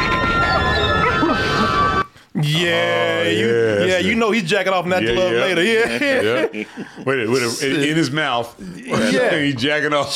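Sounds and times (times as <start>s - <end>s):
hunting dog loud drawn-out whining yelp: 0.0s - 2.1s
laughter: 0.5s - 2.1s, 5.2s - 8.2s
speech: 2.6s - 10.1s.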